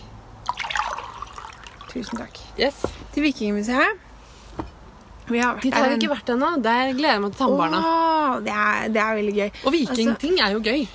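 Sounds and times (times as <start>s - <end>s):
water pouring into a glass: 0.4s - 2.4s
speech: 2.0s - 4.7s, 5.3s - 10.9s.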